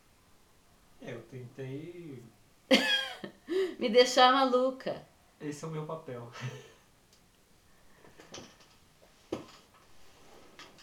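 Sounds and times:
speech: 1.3 - 6.7
laughter: 2.7 - 3.8, 6.3 - 6.8
chair creaking as someone fidgets: 8.0 - 10.8.

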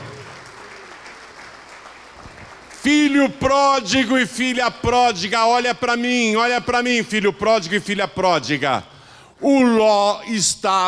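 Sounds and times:
crowd of people clapping: 0.0 - 4.0
speech: 2.8 - 10.8.

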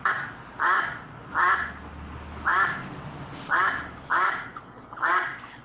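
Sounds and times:
duck quacking: 0.0 - 1.7, 3.5 - 5.4.

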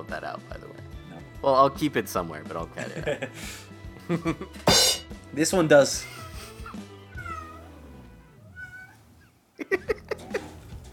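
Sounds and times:
speech: 1.4 - 6.2
laughter: 2.8 - 3.5, 9.6 - 10.6
cat meowing halfway up a door curtain: 7.1 - 7.8, 8.4 - 9.1.

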